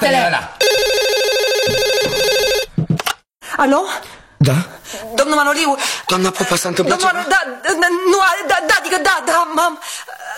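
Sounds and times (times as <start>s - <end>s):
speech: 0.3s - 0.6s, 3.6s - 10.3s
home telephone ringing with electronic warbling tone: 0.6s - 2.7s.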